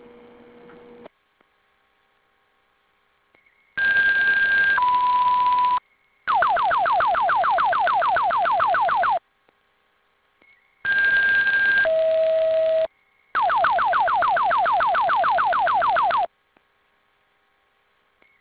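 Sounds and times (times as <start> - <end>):
faint electrical hum: 0.0 - 18.3
fire department final alarm tones: 3.8 - 9.2, 10.8 - 16.3.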